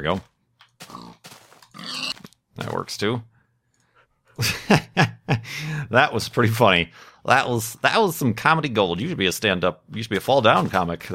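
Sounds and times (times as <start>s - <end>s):
speech: 0.0s - 0.9s, 2.6s - 3.3s, 4.4s - 11.1s
video game pig grunting: 0.8s - 2.3s
laughter: 4.4s - 5.8s.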